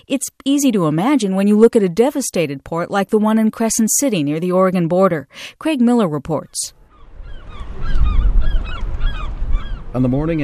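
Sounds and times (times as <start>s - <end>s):
speech: 0.0s - 6.8s, 10.0s - 10.4s
gulls calling over a storm-damaged port in Crescent City: 6.9s - 10.4s.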